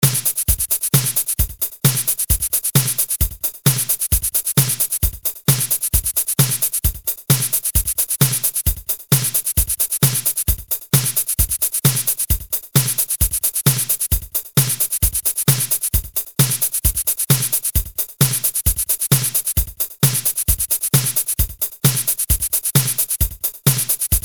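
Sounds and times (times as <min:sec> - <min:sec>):
drum kit: 0:00.0 - 0:24.2.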